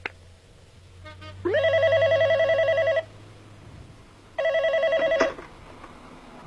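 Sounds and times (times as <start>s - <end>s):
telephone ringing in a monitored call recording: 1.5s - 3.1s, 4.4s - 5.5s.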